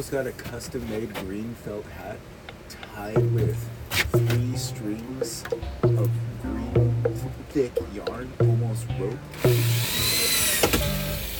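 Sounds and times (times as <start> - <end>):
speech: 0.0 - 10.1
power drill whirring with a high motor whine: 9.3 - 11.3.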